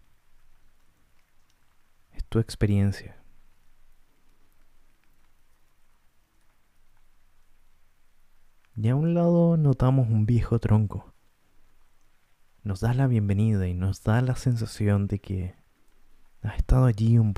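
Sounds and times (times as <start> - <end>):
soft rain pattering on surfaces in a forest: 0.0 - 17.3
speech: 2.3 - 3.2, 8.8 - 11.2, 12.6 - 15.6, 16.4 - 17.3.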